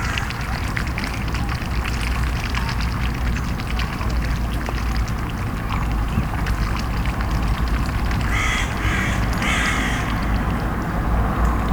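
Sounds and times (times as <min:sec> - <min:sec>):
traffic rumble: 0:00.0 - 0:11.7
crow calling on a canal: 0:08.3 - 0:10.5.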